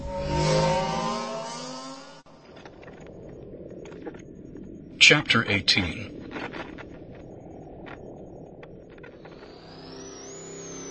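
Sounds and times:
motorbike engine revving as throttle is twisted: 0.0s - 2.3s
speech: 5.1s - 6.2s.

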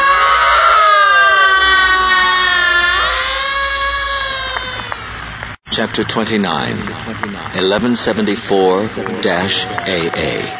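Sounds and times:
many people screaming together: 0.0s - 5.4s, 9.0s - 10.5s
speech: 6.0s - 10.5s.

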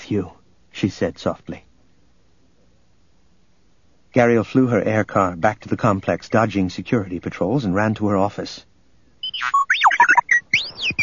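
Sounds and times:
speech: 0.1s - 1.7s, 4.2s - 8.7s, 9.4s - 9.6s
robot droid beeping beside a desk: 9.2s - 11.0s.

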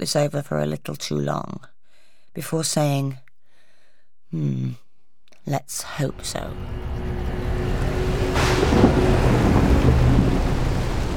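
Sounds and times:
speech: 0.0s - 1.7s, 2.4s - 3.2s, 4.3s - 4.8s, 5.4s - 7.3s
deep rumble of thunder: 6.1s - 11.1s
heavy rain and wind in a storm: 6.1s - 11.1s.

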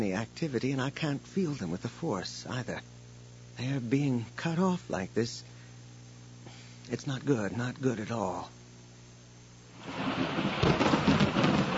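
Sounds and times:
speech: 0.0s - 3.0s, 3.6s - 5.5s, 6.9s - 8.6s, 9.8s - 10.3s
steady rain during rainstorm: 9.7s - 11.7s
rolling thunder during rainstorm: 9.8s - 11.7s.

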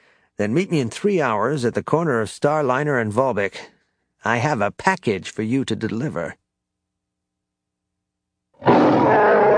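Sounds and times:
speech: 0.4s - 6.4s
deep creature roar: 8.6s - 9.5s.

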